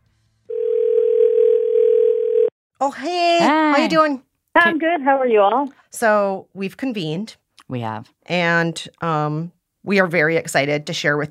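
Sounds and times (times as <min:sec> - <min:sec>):
telephone line tone: 0:00.5 - 0:02.5
speech: 0:02.8 - 0:11.2.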